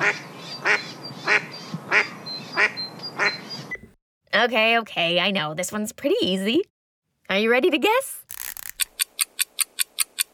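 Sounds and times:
faint higher chirps of mallard chicks: 0:00.0 - 0:03.8
soft outdoor background: 0:00.0 - 0:10.3
speech: 0:04.4 - 0:06.7, 0:07.3 - 0:08.4.

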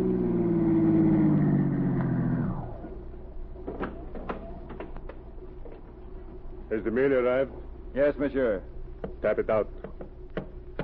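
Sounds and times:
car engine humming as the car pulls up at the curb: 0:00.0 - 0:04.0
clunks and clicks: 0:03.6 - 0:06.0
speech: 0:06.8 - 0:09.8.

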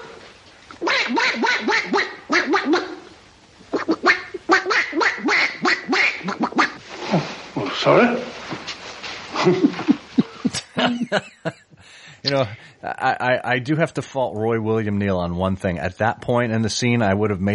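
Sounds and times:
man imitating a duck quacking: 0:00.8 - 0:03.0, 0:03.7 - 0:06.8
speech: 0:07.8 - 0:08.3, 0:09.4 - 0:09.7, 0:11.1 - 0:11.4, 0:12.3 - 0:17.5
laughter: 0:09.3 - 0:11.7.

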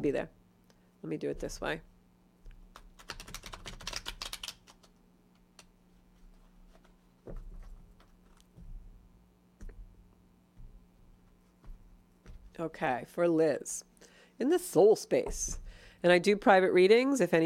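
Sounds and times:
speech: 0:00.0 - 0:00.4, 0:01.0 - 0:01.9, 0:12.6 - 0:17.4
deck of cards being riffled together: 0:02.7 - 0:05.0.

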